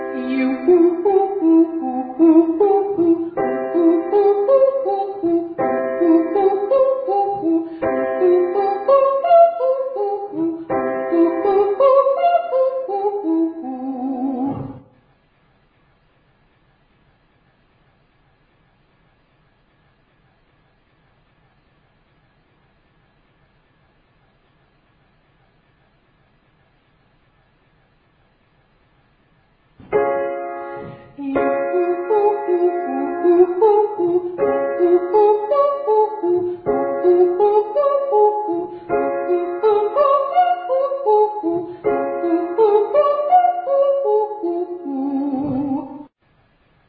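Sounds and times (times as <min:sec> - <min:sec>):
person singing ascending triads and octaves to high D: 0:00.1 - 0:14.8, 0:31.2 - 0:46.1.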